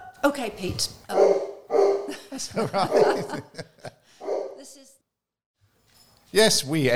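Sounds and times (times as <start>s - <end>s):
speech: 0.2s - 1.4s, 2.4s - 3.7s, 6.3s - 6.9s
guard dog barking at the postman: 1.1s - 3.5s, 4.2s - 4.7s
laughter: 2.1s - 4.1s.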